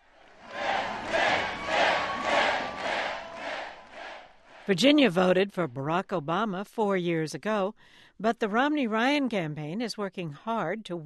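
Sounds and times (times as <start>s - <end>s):
large excited crowd of supporters cheering and chanting at a campaign event: 0.0s - 4.8s
speech: 4.7s - 11.0s.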